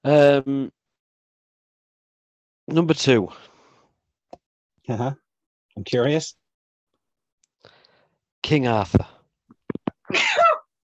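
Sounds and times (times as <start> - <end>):
speech: 0.0 - 0.8, 2.7 - 3.5, 4.9 - 5.2, 5.8 - 6.4, 8.4 - 9.2
short quick breaths: 3.3 - 4.0, 7.6 - 8.3
sneeze brought on by excitement: 10.1 - 10.7.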